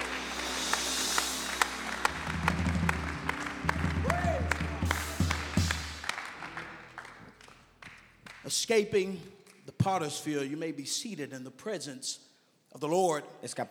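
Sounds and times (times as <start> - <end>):
church audience clapping during a revival service: 0.0 - 8.7
speech: 8.6 - 13.6.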